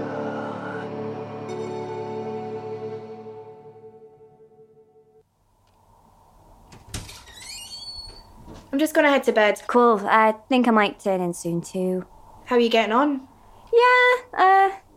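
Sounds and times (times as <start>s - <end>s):
heavy fire door creaking open: 6.7s - 8.7s
high squeak: 7.2s - 8.3s
speech: 8.7s - 14.8s.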